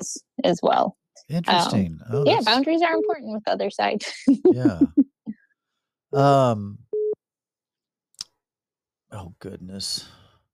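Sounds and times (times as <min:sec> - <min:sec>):
speech: 0:00.4 - 0:05.0, 0:06.1 - 0:06.8, 0:09.1 - 0:10.2
laughter: 0:01.3 - 0:02.6, 0:04.2 - 0:05.0, 0:06.2 - 0:06.7
electronic phone beep signalling an incoming call: 0:06.9 - 0:07.2.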